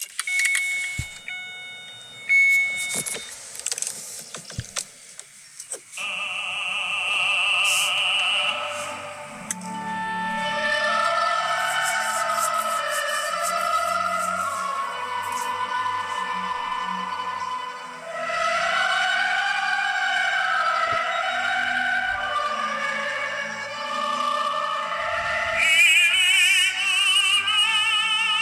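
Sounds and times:
clicks in a car: 0.0s - 6.0s
classical music playing from a car stereo: 0.0s - 28.4s.

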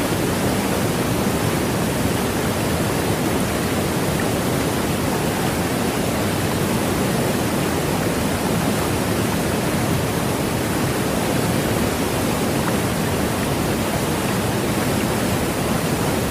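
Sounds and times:
waterfall roaring: 0.0s - 16.3s.

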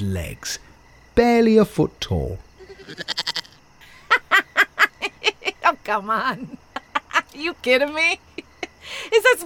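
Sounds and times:
speech: 0.0s - 3.4s, 5.6s - 6.6s, 7.3s - 9.4s
goat bleating: 2.6s - 3.6s
laughter: 3.8s - 5.6s, 6.4s - 7.4s.

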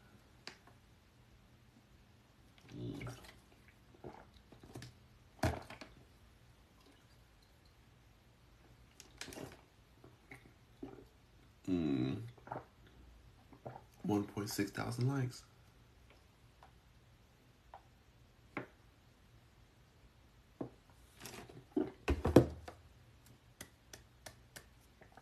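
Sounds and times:
person gulping and swallowing water: 2.6s - 5.8s, 9.1s - 14.0s, 21.6s - 22.1s
speech: 14.4s - 15.5s.

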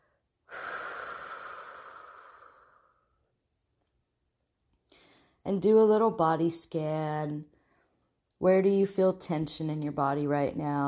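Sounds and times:
deep breath in through the nose, out through the mouth: 0.0s - 3.2s, 4.9s - 5.4s
speech: 5.4s - 7.5s, 8.4s - 10.8s.

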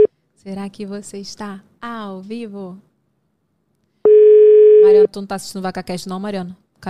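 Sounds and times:
speech: 0.4s - 2.9s, 4.9s - 6.8s
electronic ringing tone of an unanswered outgoing phone call: 4.1s - 5.1s.

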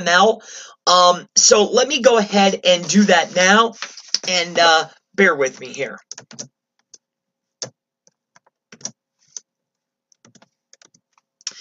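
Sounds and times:
speech: 0.0s - 6.6s
typing HTML code on a computer keyboard: 6.1s - 7.0s, 8.1s - 9.4s, 10.2s - 11.3s.

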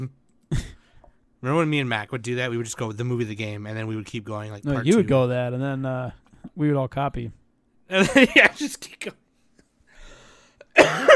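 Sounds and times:
speech: 0.0s - 0.6s, 1.4s - 9.2s
harsh breathy cough: 10.6s - 11.1s.

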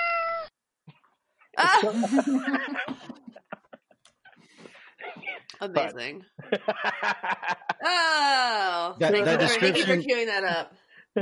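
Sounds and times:
cats meowing and yowling by a window: 0.0s - 0.5s
laughter: 1.6s - 4.7s, 6.4s - 8.2s, 9.0s - 10.1s
speech: 1.8s - 3.0s, 5.6s - 11.2s.

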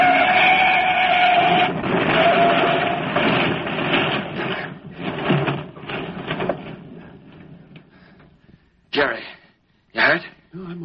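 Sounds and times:
truck crashing into a car and overturning: 0.0s - 7.9s.

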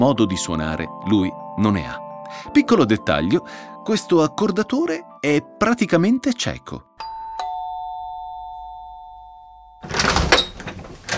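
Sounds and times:
speech: 0.0s - 7.1s
doorbell chime: 7.0s - 10.6s
house door opening with rattling handle and hinge: 9.8s - 11.1s.

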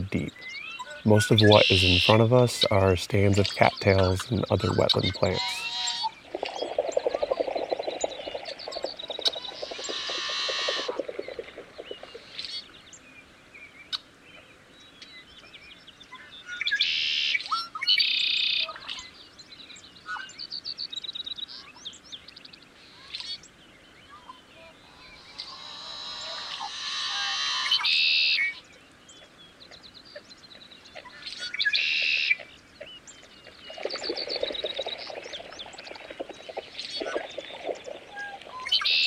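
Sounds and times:
marsh birds calling and chattering: 0.0s - 12.8s, 24.1s - 39.0s
steady watery hiss: 0.0s - 20.6s, 21.2s - 39.0s
speech: 0.1s - 5.7s.

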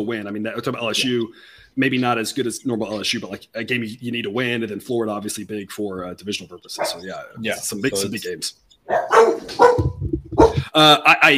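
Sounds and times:
speech: 0.0s - 10.0s, 10.8s - 11.3s
dog barking: 6.8s - 7.0s, 8.9s - 10.6s.

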